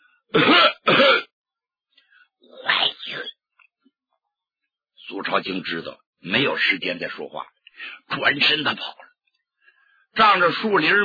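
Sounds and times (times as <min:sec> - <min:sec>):
loud rough throaty coughs: 0:00.3 - 0:01.3
speech: 0:05.3 - 0:09.0, 0:10.2 - 0:11.0.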